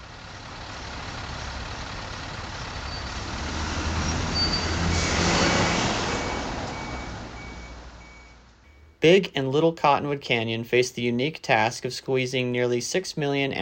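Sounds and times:
heavier vehicle passing: 0:00.0 - 0:08.8
highway traffic: 0:00.0 - 0:12.7
speech: 0:09.0 - 0:13.5.

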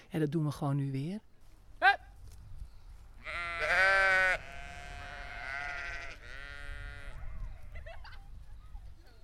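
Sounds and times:
speech: 0:00.1 - 0:01.3
sheep bleating: 0:03.2 - 0:07.3
laughter: 0:07.7 - 0:08.4.

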